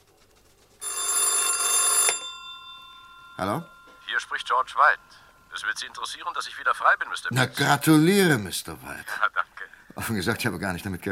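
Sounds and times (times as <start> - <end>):
telephone bell ringing: 0.8 - 5.9
speech: 3.4 - 9.3, 10.0 - 11.0.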